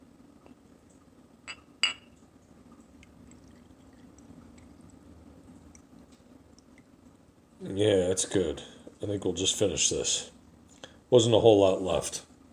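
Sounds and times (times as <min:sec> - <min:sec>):
glass clinks: 0:01.5 - 0:02.1
re-oaked spirit trickling into a glass: 0:02.8 - 0:07.0
speech: 0:07.6 - 0:10.4, 0:11.1 - 0:12.3.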